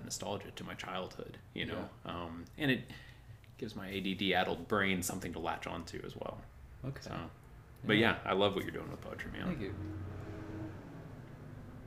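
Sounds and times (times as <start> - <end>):
speech: 0.1 - 10.3
truck driving past outside: 9.0 - 11.8.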